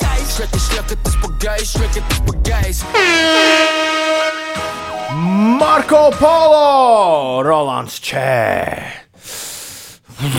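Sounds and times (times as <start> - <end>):
punchy bass-heavy rhythmic beats of a song: 0.0 - 6.5
speech: 0.4 - 9.4, 10.2 - 10.3
loud sustained brassy synth chord: 2.8 - 5.4.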